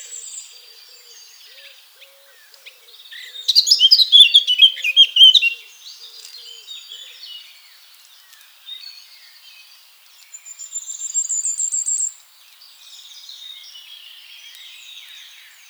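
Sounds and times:
Eurasian blackcap Sylvia atricapilla warbling: 0:03.5 - 0:05.5.

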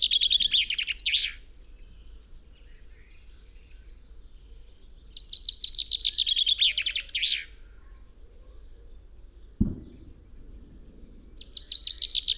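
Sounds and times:
common chaffinch Fringilla coelebs singing: 0:00.0 - 0:03.9, 0:04.5 - 0:07.6, 0:09.6 - 0:12.3.

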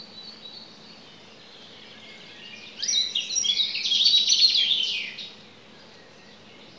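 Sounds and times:
common chaffinch Fringilla coelebs song: 0:00.0 - 0:06.7.

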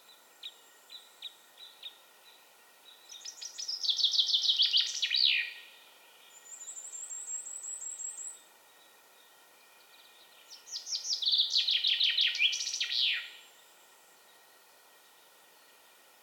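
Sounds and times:
common chaffinch Fringilla coelebs descending trilled song phrase with flourish: 0:00.4 - 0:13.4.

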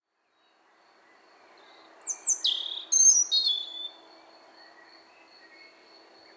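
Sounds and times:
European robin Erithacus rubecula singing: 0:02.0 - 0:04.0.

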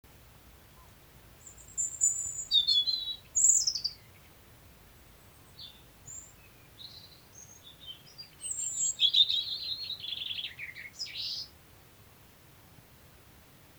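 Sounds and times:
European robin song, Erithacus rubecula: 0:00.8 - 0:04.4, 0:05.0 - 0:11.6.

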